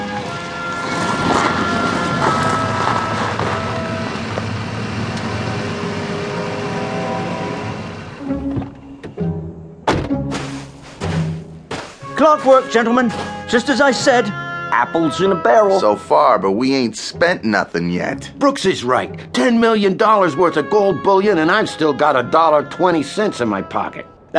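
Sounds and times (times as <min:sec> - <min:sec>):
car engine rumbling: 0:00.0 - 0:09.8
heavy thunks and knocks: 0:09.8 - 0:12.1
speech: 0:12.2 - 0:24.3.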